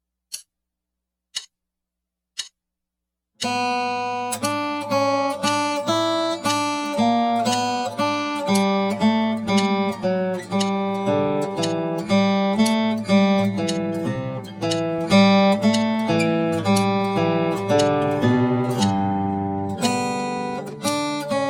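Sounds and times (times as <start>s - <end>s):
slow picking study in G: 3.4s - 21.4s.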